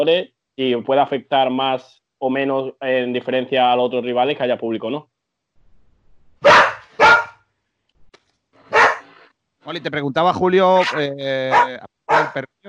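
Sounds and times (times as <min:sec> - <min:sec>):
speech: 0:00.0 - 0:05.1, 0:09.7 - 0:12.6
small female dog barking: 0:06.4 - 0:07.4, 0:08.7 - 0:09.1, 0:10.8 - 0:12.4.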